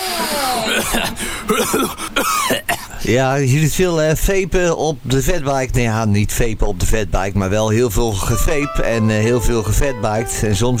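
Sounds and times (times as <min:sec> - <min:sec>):
speech: 0:00.2 - 0:10.7
harsh heavy coughing: 0:00.4 - 0:03.1
rough throat clearing: 0:00.6 - 0:03.1.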